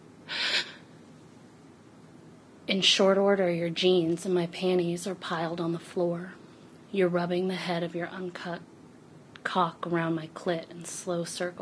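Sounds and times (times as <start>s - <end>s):
sharp breathy gasp: 0.3s - 0.9s
speech: 2.7s - 8.7s, 9.4s - 11.6s.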